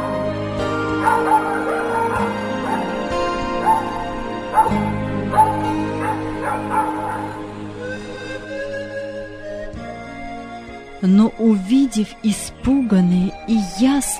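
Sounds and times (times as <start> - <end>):
puppy barking excitedly: 1.0 - 7.5
speech: 11.0 - 14.1.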